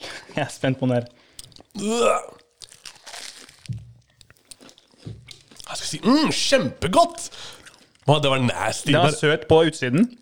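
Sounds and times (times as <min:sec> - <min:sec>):
speech: 0:00.4 - 0:01.2, 0:01.8 - 0:02.4, 0:05.9 - 0:10.2
chewing noises: 0:01.1 - 0:06.5, 0:07.2 - 0:09.0
crunching bite into a whole sweet: 0:01.4 - 0:06.0
person crying out: 0:01.8 - 0:02.4.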